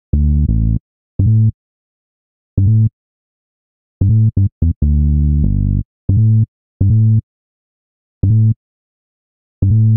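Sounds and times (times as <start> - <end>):
bassline in A minor at 85 bpm: 0.0 - 1.6, 2.6 - 2.9, 4.0 - 7.2, 8.2 - 8.6, 9.6 - 9.9.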